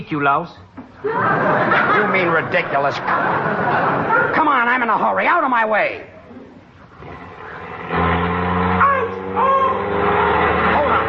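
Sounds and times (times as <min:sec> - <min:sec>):
speech: 0:00.0 - 0:06.1
laughter: 0:01.0 - 0:04.4
car engine starting and pulling away: 0:06.8 - 0:11.0.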